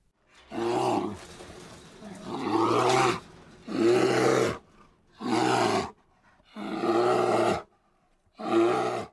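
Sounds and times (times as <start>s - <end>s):
bear growling and roaring: 0.4s - 7.7s, 8.3s - 9.1s.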